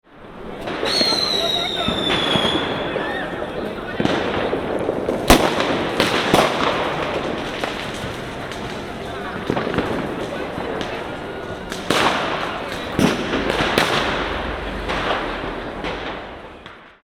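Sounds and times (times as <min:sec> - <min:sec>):
fireworks: 0:00.1 - 0:17.0.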